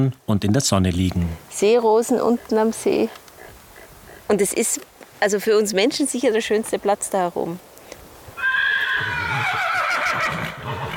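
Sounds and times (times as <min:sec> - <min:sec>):
speech: 0:00.0 - 0:03.2, 0:04.3 - 0:07.7
horse neighing: 0:02.2 - 0:04.6, 0:08.4 - 0:10.9.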